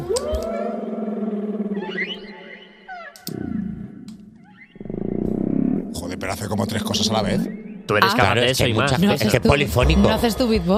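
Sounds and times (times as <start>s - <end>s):
blue whale call with moans, chirps and whistles: 0.0s - 5.9s
speech: 6.2s - 10.7s.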